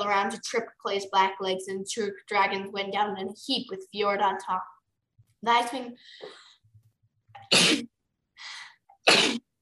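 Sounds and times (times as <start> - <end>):
speech: 0.1 - 4.8, 5.4 - 6.5, 7.5 - 9.4
person sneezing: 7.4 - 7.9, 9.0 - 9.5.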